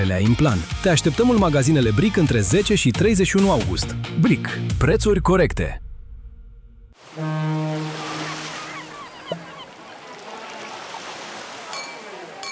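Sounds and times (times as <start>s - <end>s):
speech: 0.0s - 5.8s
deep ship's horn: 7.0s - 12.4s
sea waves crashing against the shore: 7.0s - 12.4s.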